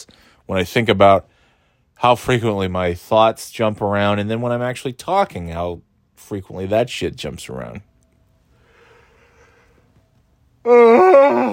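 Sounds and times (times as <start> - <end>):
speech: 0.5 - 1.3, 2.0 - 7.9, 10.6 - 11.5
person yawning with faint voiced groan: 10.6 - 11.5.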